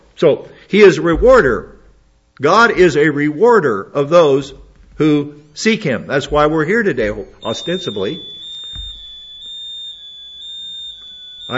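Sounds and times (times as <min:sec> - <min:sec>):
speech: 0:00.2 - 0:01.8, 0:02.4 - 0:08.3
electronic alarm set off when the power went out: 0:06.3 - 0:11.5
low thump: 0:08.7 - 0:09.2.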